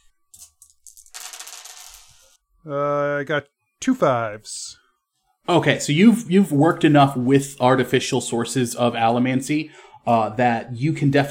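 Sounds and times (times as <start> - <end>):
handful of dice rattling: 0.3 - 2.4
speech: 2.6 - 4.8, 5.5 - 11.2.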